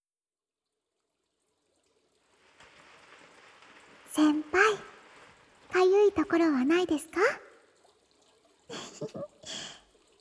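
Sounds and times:
water poured while washing someone's back: 2.0s - 10.1s
speech: 4.2s - 4.9s, 6.2s - 7.5s, 9.0s - 9.7s.

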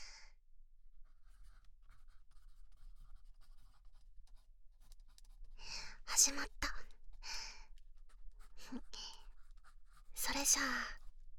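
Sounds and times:
automatic writing pen scratching on paper: 1.3s - 5.4s, 8.0s - 11.1s
speech: 6.2s - 6.6s, 8.7s - 9.0s, 10.3s - 11.0s.

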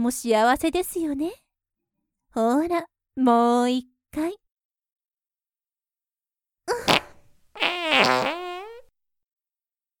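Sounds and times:
speech: 0.0s - 1.4s, 2.3s - 4.4s
fart: 6.7s - 8.9s.

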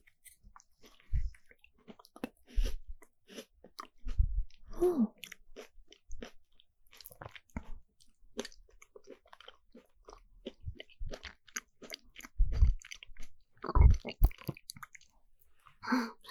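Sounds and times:
crunchy chewing and bites: 0.0s - 15.8s
throat gulping while eating: 1.1s - 1.4s, 10.5s - 15.1s
speech: 4.8s - 5.2s.

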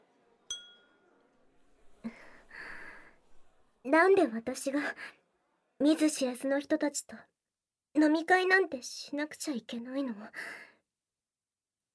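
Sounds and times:
glasses clinking in a toast: 0.5s - 1.0s
speech: 3.8s - 5.2s, 5.8s - 7.3s, 7.9s - 10.7s.

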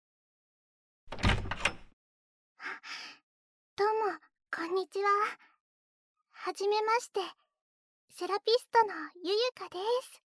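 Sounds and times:
front door latch clunk and rattle: 1.1s - 1.9s
speech: 3.8s - 5.5s, 6.4s - 7.4s, 8.1s - 10.2s.

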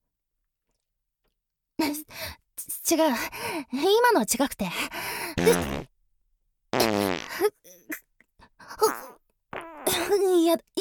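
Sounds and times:
speech: 1.8s - 5.9s, 7.4s - 7.9s, 10.2s - 10.8s
loud farts: 6.8s - 7.3s.

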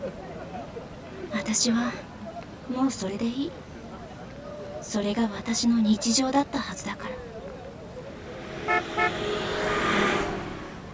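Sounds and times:
speech: 1.5s - 2.1s, 2.7s - 3.6s, 4.9s - 7.3s
black car driving past: 7.9s - 10.9s
car horn toots: 8.5s - 10.1s.

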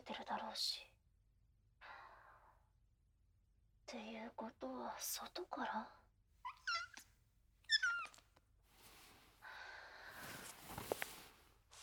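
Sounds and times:
speech: 0.1s - 0.9s, 3.9s - 6.0s
cat meowing indoors at New Year: 7.7s - 8.2s
soft shuffling and rustling: 8.7s - 9.4s, 10.1s - 11.8s.

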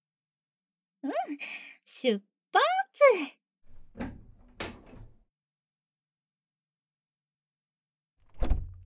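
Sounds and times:
speech: 1.0s - 3.4s
door sliding and bumping shut with knocks and rattle: 3.7s - 5.2s, 8.3s - 8.8s.

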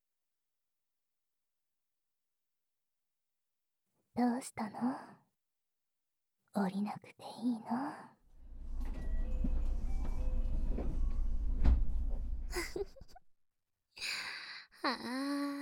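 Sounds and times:
speech: 4.2s - 5.2s, 6.6s - 8.2s, 12.5s - 13.2s, 14.8s - 15.5s
train carriage rumble: 8.3s - 12.8s
train door sliding shut: 8.3s - 13.0s.

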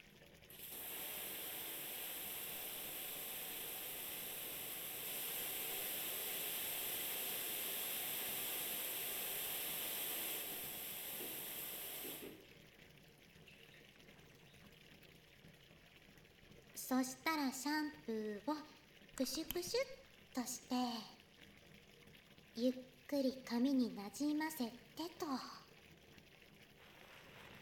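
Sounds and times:
shower water spraying on hair of a seated person: 0.5s - 12.4s
speech: 16.9s - 21.2s, 22.6s - 25.6s.

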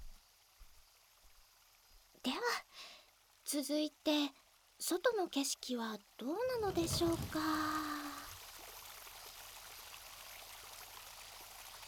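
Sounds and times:
speech: 2.2s - 7.9s
river water flowing below window: 6.4s - 8.7s.

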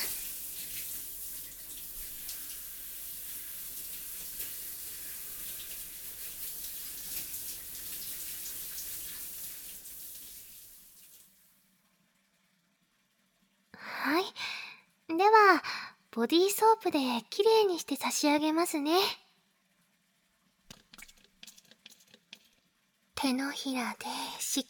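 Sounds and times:
hot water running for a bath: 0.0s - 11.5s, 20.6s - 24.6s
speech: 16.2s - 19.2s, 23.2s - 24.6s.

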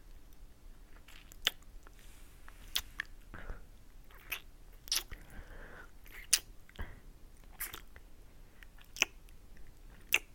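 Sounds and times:
ear nibbling and chewing wet mouth sounds with smacks, clicks and squishes: 1.1s - 3.3s, 4.1s - 5.3s, 6.0s - 6.5s, 7.4s - 8.0s, 8.7s - 10.3s.

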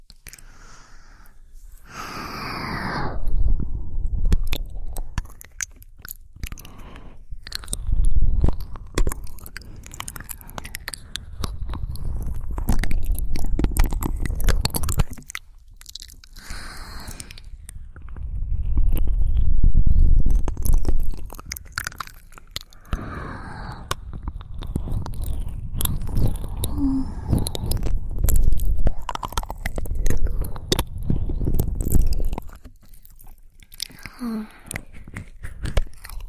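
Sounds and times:
wet mouth sounds of eating and nibbling on ears: 0.0s - 2.4s, 3.2s - 36.2s
soft breathy noises: 0.0s - 5.2s, 6.4s - 12.6s, 16.2s - 18.5s, 22.4s - 32.6s, 33.7s - 36.2s.

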